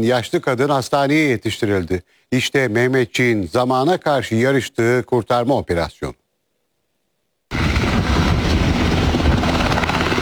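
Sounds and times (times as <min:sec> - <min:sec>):
speech: 0:00.0 - 0:06.2
military gendarmerie helicopter rotor and engine roar taking off: 0:07.5 - 0:10.2.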